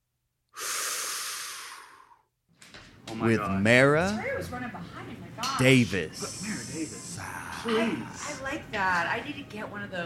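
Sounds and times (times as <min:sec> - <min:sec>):
long loud hot breath drawn in with rasping hiss: 0:00.5 - 0:02.3
speech: 0:03.1 - 0:10.0.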